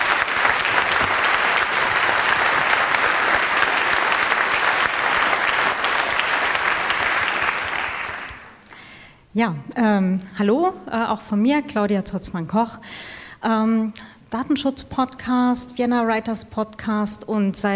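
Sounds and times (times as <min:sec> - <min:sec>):
audience applause: 0:00.0 - 0:08.6
speech: 0:09.4 - 0:17.7.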